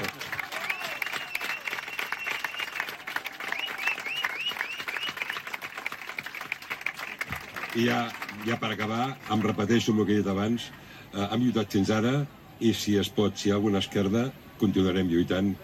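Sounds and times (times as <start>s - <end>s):
audience applause: 0.0s - 9.8s
faint whistles or cheers from the crowd: 0.3s - 5.6s
speech: 7.8s - 15.6s.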